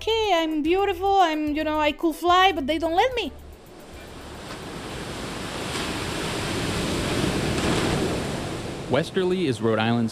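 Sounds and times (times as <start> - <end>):
speech: 0.4 - 3.4, 8.9 - 10.1
windy hiss: 3.4 - 10.1
Atlantic Ocean surf at Westerly, Rhode Island: 3.5 - 10.1.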